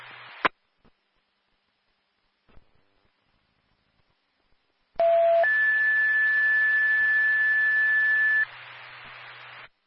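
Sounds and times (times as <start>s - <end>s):
brief static burst: 0.0s - 0.5s, 7.0s - 9.8s
alarm system electronic beeping tone: 5.0s - 8.4s.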